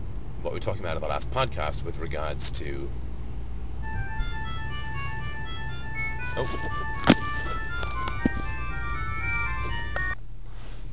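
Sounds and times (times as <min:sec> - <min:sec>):
speech: 0:00.4 - 0:03.1, 0:06.4 - 0:07.1
phone electronic ringtone with an incoming call: 0:03.8 - 0:10.2.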